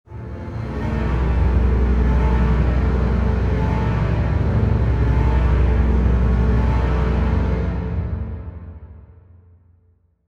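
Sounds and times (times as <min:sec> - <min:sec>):
low chase horror strings: 0:00.1 - 0:09.3.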